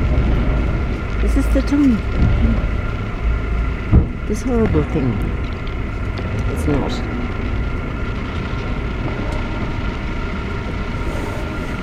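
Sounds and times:
train rumbling along: 0.0s - 11.8s
speech: 1.2s - 2.7s, 4.3s - 5.5s, 6.6s - 7.1s.

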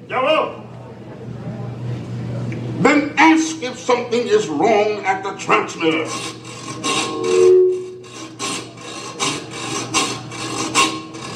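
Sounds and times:
speech: 2.8s - 6.4s
rough scraping: 6.0s - 11.3s.

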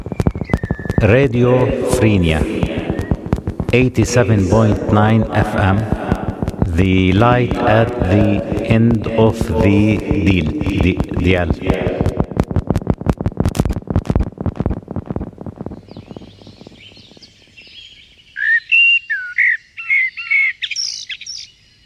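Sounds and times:
soft twittering: 0.0s - 9.2s, 14.4s - 21.8s
rapid rhythmic tapping: 0.0s - 17.9s
speech: 1.0s - 2.6s, 3.7s - 6.0s, 6.8s - 11.9s
blackbird singing fluting whistled phrases: 15.7s - 21.8s.

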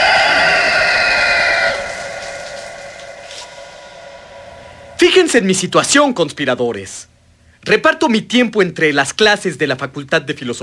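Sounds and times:
rooster crowing: 0.0s - 5.0s
speech: 5.3s - 10.6s.

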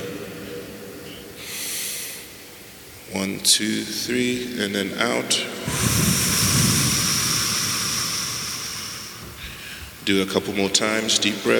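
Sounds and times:
deep inhale: 1.0s - 2.5s, 5.7s - 10.0s
speech: 3.1s - 6.7s, 10.1s - 11.5s.

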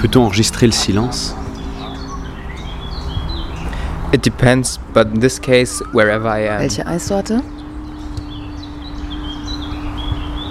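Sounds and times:
speech: 0.0s - 1.4s, 4.1s - 7.6s
birds chirping: 0.0s - 10.4s
steady low hum: 0.0s - 10.4s.

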